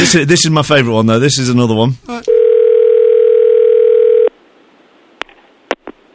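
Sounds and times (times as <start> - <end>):
speech: 0.0 - 2.4
telephone ringing tone on a prank call: 2.3 - 4.3.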